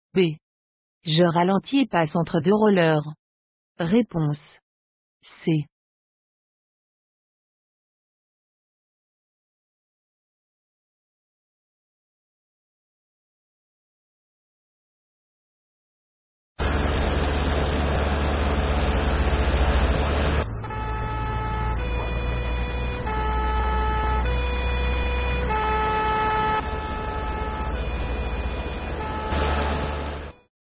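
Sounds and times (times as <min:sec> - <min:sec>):
speech: 0:00.2 - 0:00.4, 0:01.0 - 0:03.2, 0:03.8 - 0:04.6, 0:05.2 - 0:05.7
heavy rumbling traffic or engine noise: 0:16.6 - 0:30.4
fire truck siren wailing in two-tone pattern: 0:16.6 - 0:30.5.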